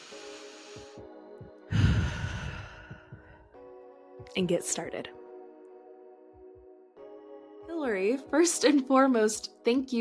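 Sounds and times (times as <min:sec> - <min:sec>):
deep breath with a long loud exhale: 0:00.0 - 0:03.6
speech: 0:04.4 - 0:05.2, 0:07.9 - 0:09.9.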